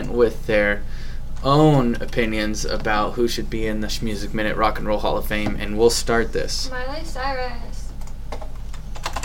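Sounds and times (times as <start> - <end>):
speech: 0.1 - 7.8
fingers typing on a computer keyboard: 8.0 - 9.2.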